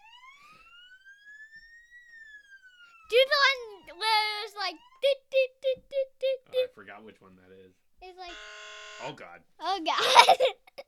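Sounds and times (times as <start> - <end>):
police siren wailing with a rising tone: 0.0 - 6.7, 8.1 - 9.2
speech: 6.9 - 10.6
laughter: 9.8 - 10.8.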